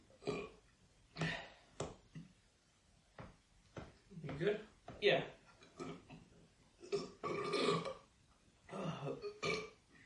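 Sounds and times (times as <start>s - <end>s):
big croaky burp: 0.2s - 0.6s, 5.6s - 6.2s, 6.8s - 8.1s, 9.0s - 9.8s
speech: 4.4s - 5.4s.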